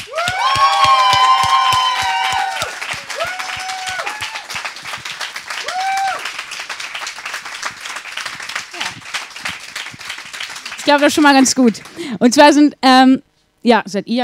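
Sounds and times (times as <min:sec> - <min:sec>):
crowd cheering and whooping: 0:00.0 - 0:06.8
audience applauding in greeting: 0:00.0 - 0:12.1
speech: 0:10.9 - 0:14.2.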